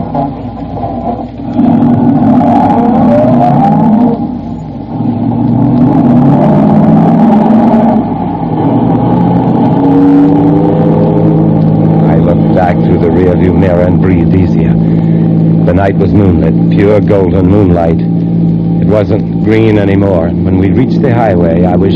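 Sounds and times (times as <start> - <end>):
car engine rumbling as the car drives off: 0.0 - 21.9
speech: 15.8 - 18.1, 18.9 - 21.9.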